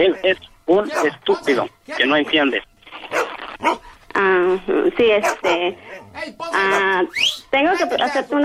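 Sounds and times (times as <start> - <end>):
speech: 0.0 - 2.7, 3.6 - 8.4
dog barking and yelping: 0.9 - 1.2, 3.1 - 3.8, 5.1 - 7.1.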